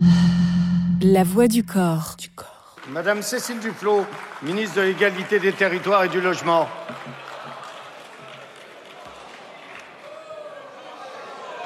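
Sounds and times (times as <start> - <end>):
speech: 1.0 - 2.2, 2.9 - 7.2
deputies' overlapping voices and jeers in a parliament chamber: 6.1 - 11.6.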